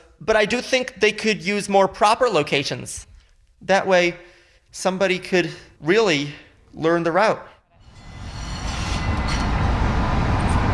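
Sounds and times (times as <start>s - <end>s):
speech: 0.2s - 7.5s
faint metallic squeals of a subway train: 7.8s - 10.6s
subway train rumbling along the tracks: 7.9s - 10.7s.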